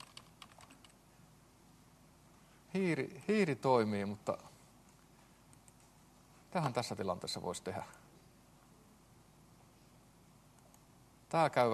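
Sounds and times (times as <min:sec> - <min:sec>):
typing on a computer keyboard: 0:00.0 - 0:01.0
speech: 0:02.7 - 0:04.5, 0:06.5 - 0:08.0, 0:11.3 - 0:11.7.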